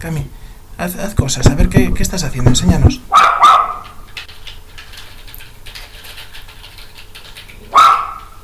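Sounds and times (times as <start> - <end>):
speech: 0.0 - 3.5
dog barking: 3.1 - 4.0, 7.7 - 8.4.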